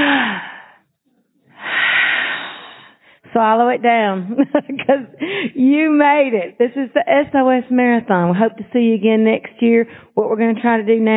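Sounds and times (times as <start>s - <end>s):
group of people taking a big deep cleansing breath together: 0.0s - 0.9s, 1.5s - 3.3s, 5.2s - 5.6s
speech: 3.4s - 11.1s.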